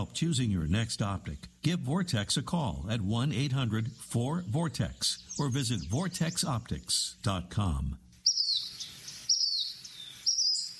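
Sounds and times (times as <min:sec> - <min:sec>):
speech: 0:00.0 - 0:08.0
unidentified bird calling in high thin whistled notes: 0:08.2 - 0:10.7.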